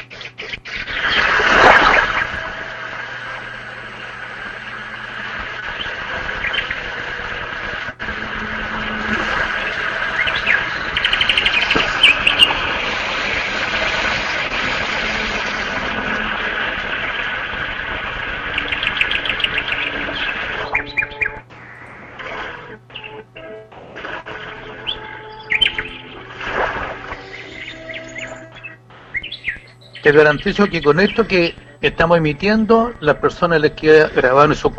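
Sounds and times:
recorded birdsong with high chirps and trills: 0:00.0 - 0:02.4, 0:03.1 - 0:07.2, 0:08.4 - 0:14.1, 0:18.3 - 0:21.9, 0:22.7 - 0:23.6, 0:24.3 - 0:26.3, 0:26.9 - 0:34.7
low hum: 0:00.0 - 0:34.7
steady wash of broadband noise: 0:00.0 - 0:34.7
speech: 0:30.1 - 0:34.7.

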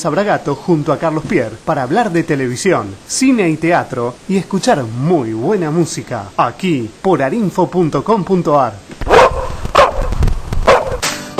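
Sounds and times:
speech: 0:00.0 - 0:09.1
dog barking: 0:09.1 - 0:11.0.

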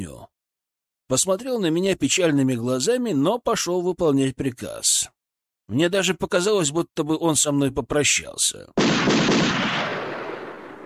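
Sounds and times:
speech: 0:00.0 - 0:00.2, 0:01.1 - 0:10.1
volley of gunshots fired by rebels: 0:08.8 - 0:10.8.

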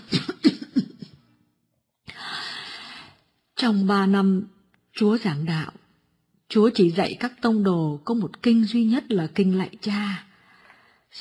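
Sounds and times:
old woman coughing harshly: 0:00.0 - 0:01.0
speech: 0:03.6 - 0:05.8, 0:06.5 - 0:10.3.

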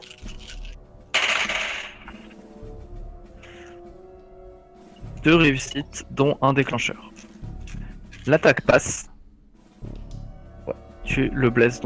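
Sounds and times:
six dice rolled for a defense roll in a tabletop role-playing game: 0:00.0 - 0:02.3
speech: 0:05.2 - 0:07.1, 0:08.2 - 0:09.1, 0:11.2 - 0:11.8.

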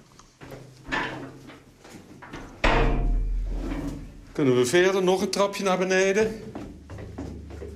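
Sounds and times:
heavy metal door impacts in a concrete bunker: 0:02.6 - 0:04.2
speech: 0:04.4 - 0:06.6.

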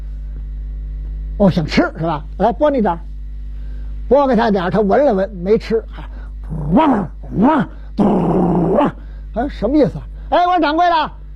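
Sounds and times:
speech: 0:01.4 - 0:03.1, 0:04.1 - 0:11.2
human voice imitating a dog growling: 0:05.9 - 0:10.1.

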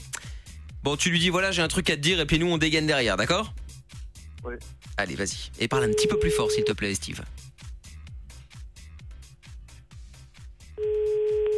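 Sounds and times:
speech: 0:00.8 - 0:03.6, 0:04.4 - 0:07.4
telephone ringing tone: 0:05.8 - 0:06.8, 0:10.8 - 0:11.5.

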